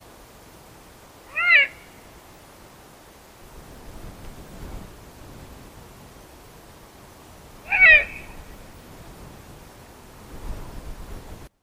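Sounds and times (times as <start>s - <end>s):
Eurasian eagle-owl calling: 1.3s - 2.0s, 7.6s - 8.5s.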